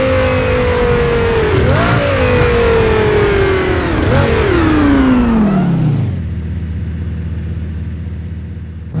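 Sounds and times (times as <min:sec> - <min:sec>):
V8 engine throttle off: 0:00.0 - 0:08.9.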